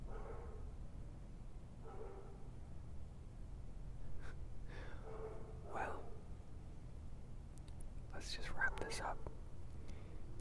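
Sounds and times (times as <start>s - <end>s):
dogs barking: 0.0s - 0.8s, 1.8s - 2.6s, 4.7s - 6.4s, 8.6s - 9.4s
low rumble of wind: 0.0s - 10.3s.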